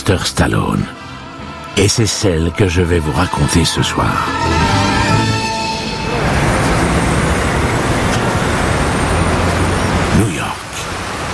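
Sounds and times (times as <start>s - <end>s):
speech: 0.0s - 1.0s, 1.8s - 4.8s
engines rumbling: 3.1s - 11.3s
distant police sirens: 4.0s - 11.3s
dense steady roar of city street traffic: 4.1s - 11.3s.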